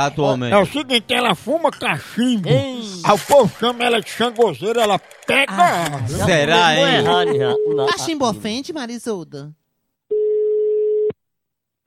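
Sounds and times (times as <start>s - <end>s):
speech: 0.0s - 9.6s
laughter: 1.5s - 8.4s
telephone line tone while placing a call: 6.7s - 8.0s, 10.1s - 11.1s.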